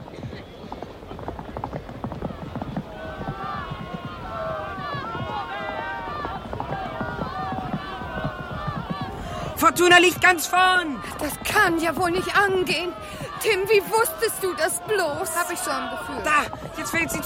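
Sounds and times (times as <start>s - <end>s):
racehorses galloping at the start of a horse race: 0.0s - 17.2s
excited crowd cheering and shouting: 2.0s - 17.2s
speech: 9.6s - 17.2s.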